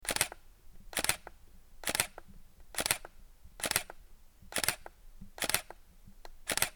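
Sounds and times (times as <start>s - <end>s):
Canon EOS Rebel T3 1100D camera shutter: 0.1s - 0.4s, 1.0s - 2.2s, 2.8s - 5.8s, 6.5s - 6.7s.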